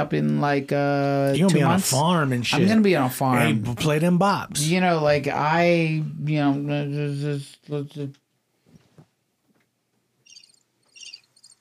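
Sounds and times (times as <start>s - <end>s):
speech: 0.0s - 8.2s
cricket chirping: 10.3s - 11.5s.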